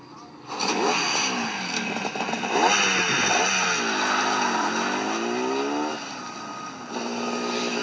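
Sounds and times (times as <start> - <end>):
motorcycle engine revving while racing through gear shifts: 0.4 - 7.8.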